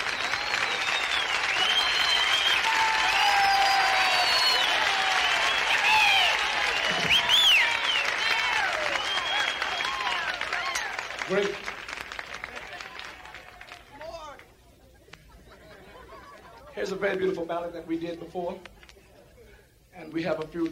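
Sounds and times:
whistles and cheers: 0.0 - 11.6
live show audience applause: 0.0 - 16.6
laughter: 14.5 - 17.3, 18.6 - 19.7
speech: 16.9 - 18.7, 20.1 - 20.7.

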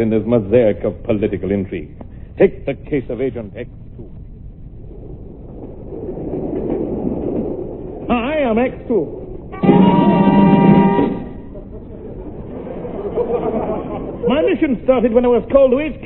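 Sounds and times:
speech: 0.0 - 4.2, 8.1 - 10.1, 14.3 - 16.0
train to London rumbling along the rails: 5.5 - 11.6
train whistle: 9.5 - 11.6
laughter: 11.2 - 14.9.

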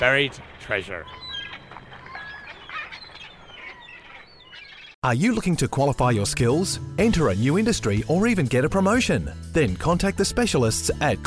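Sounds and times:
speech: 0.0 - 1.3, 5.0 - 11.2
parrot squawking and chattering at Glasgow Zoo: 1.0 - 5.0.

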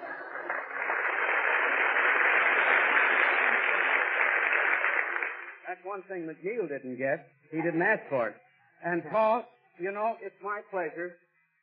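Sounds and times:
audience applause from 1943 with narrow old-recording tone: 0.0 - 5.8
speech: 5.8 - 11.2.

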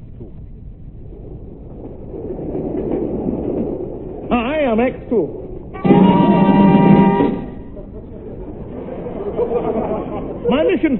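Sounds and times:
train rumbling along: 0.0 - 10.9
speech: 4.7 - 6.2
loud sustained horn-like tone: 5.8 - 7.8
laughter: 7.5 - 10.9.

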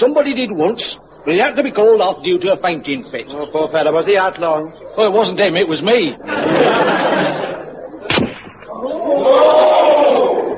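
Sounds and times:
speech: 0.0 - 7.2
noise: 0.0 - 10.5
laughter: 6.2 - 8.1
rifle shot fired at a target during shooting practice: 8.1 - 8.7.

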